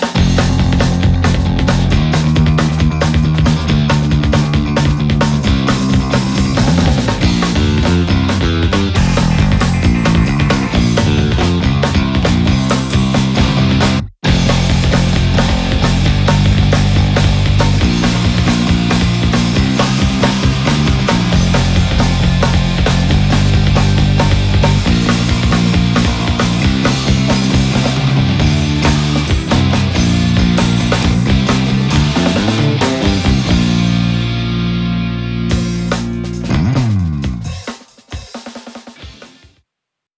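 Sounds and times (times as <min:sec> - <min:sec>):
guitar pick sound: 0:00.2 - 0:37.4.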